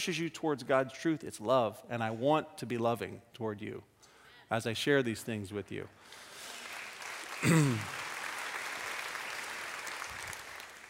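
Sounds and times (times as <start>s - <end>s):
speech: 0.0s - 3.9s, 4.5s - 6.2s, 7.4s - 8.0s
crowd applauding: 6.2s - 10.8s.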